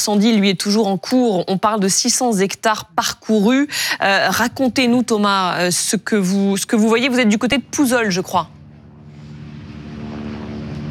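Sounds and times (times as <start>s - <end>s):
speech: 0.0s - 8.6s
water-bombing helicopter with 1000-litre capacity flying over a large wildfire: 6.9s - 10.9s.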